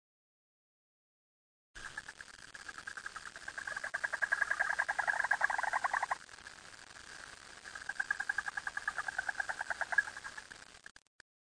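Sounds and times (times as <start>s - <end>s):
frog calling in a rapid rattling trill: 1.8s - 6.4s, 7.1s - 10.6s.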